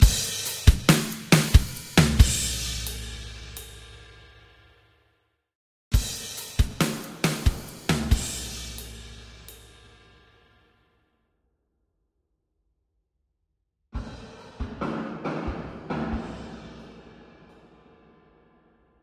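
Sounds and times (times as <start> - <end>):
drums on a hillside: 0.0 - 4.8, 5.9 - 10.5, 14.0 - 18.3.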